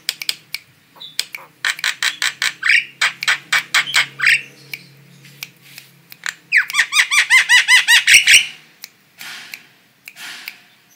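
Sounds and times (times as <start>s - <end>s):
female starling giving squeaky hooked calls: 0.9s - 5.4s, 6.2s - 9.6s.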